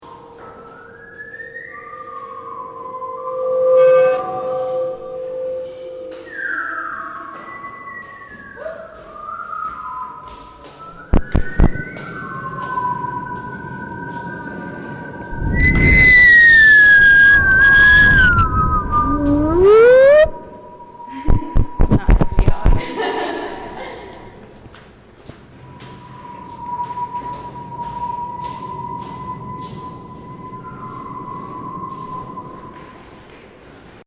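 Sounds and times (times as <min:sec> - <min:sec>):
whistle jam with audience participation: 0:00.7 - 0:22.8, 0:25.7 - 0:33.0
laughter: 0:22.8 - 0:24.4.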